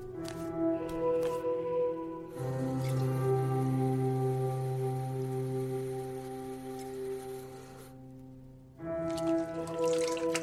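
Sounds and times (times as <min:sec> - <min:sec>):
low sustained musical drone: 0:00.0 - 0:10.4
person splashing their face with water: 0:09.1 - 0:10.4
tap water running at a sink: 0:09.1 - 0:10.4.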